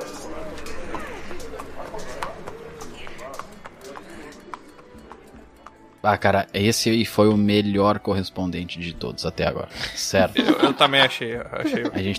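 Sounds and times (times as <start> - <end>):
horse hooves clip-clopping: 0.0 - 6.3
busy outdoor noise: 0.0 - 6.6
speech: 6.0 - 12.1
laughter: 9.8 - 12.1.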